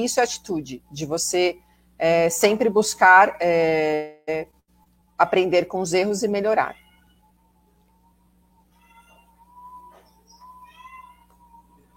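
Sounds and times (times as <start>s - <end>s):
speech: 0.0s - 4.6s, 5.2s - 6.8s
steady low hum: 0.0s - 11.9s
cat meowing: 6.6s - 7.2s, 8.7s - 11.6s.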